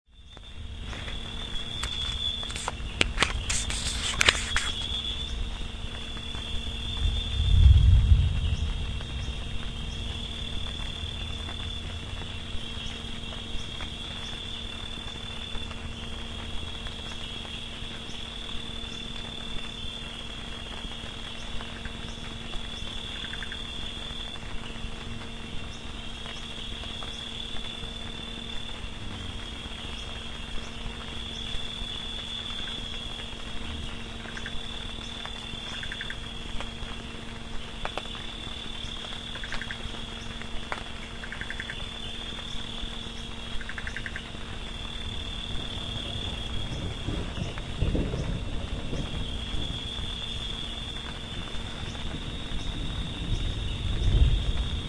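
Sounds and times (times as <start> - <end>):
frogs: 0.1 - 54.8
thunder: 6.6 - 12.5, 45.1 - 54.8.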